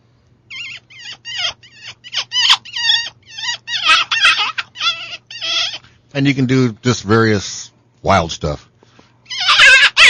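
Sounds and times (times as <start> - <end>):
bite-down predator call squeaking bird-like chirps: 0.5 - 5.8, 9.3 - 10.0
speech: 6.2 - 8.7.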